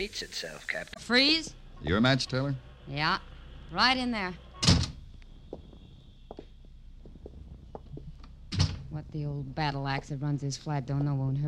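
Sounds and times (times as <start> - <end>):
speech: 0.0 - 4.4, 9.0 - 11.4
door shutting with a solid thunk: 4.6 - 5.0, 8.2 - 8.9.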